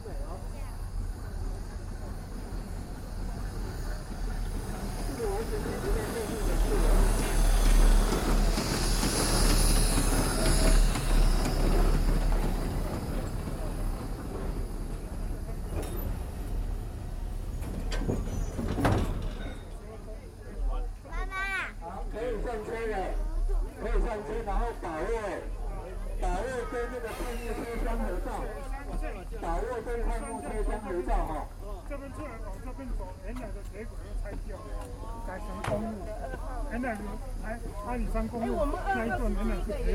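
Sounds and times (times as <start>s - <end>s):
people talking: 0.0s - 16.2s, 19.2s - 39.9s
hissing steam from a steam train: 0.0s - 19.8s, 26.8s - 30.4s
steam train rumbling past: 0.0s - 39.9s.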